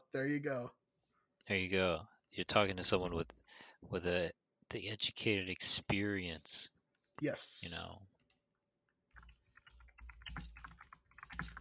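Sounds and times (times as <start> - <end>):
speech: 0.1 - 0.8, 1.4 - 8.1
rapid typing on a computer keyboard: 9.1 - 11.5.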